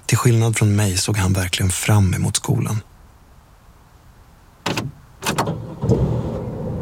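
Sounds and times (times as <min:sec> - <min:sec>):
speech: 0:00.1 - 0:02.9
car door thumps: 0:04.6 - 0:06.4
car engine cranking, catching and settling into a low idle: 0:04.6 - 0:06.8.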